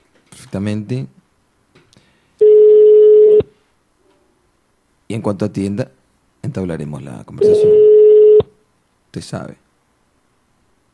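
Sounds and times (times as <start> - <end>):
speech: 0.4 - 1.2, 5.2 - 7.9, 9.2 - 9.6
Skype call outgoing ringing tone: 2.4 - 3.4, 7.4 - 8.5.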